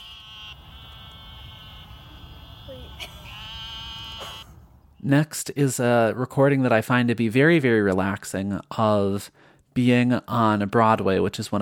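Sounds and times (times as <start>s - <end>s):
chorus of frogs giving wavering bleats: 0.0s - 4.4s
speech: 5.0s - 11.6s.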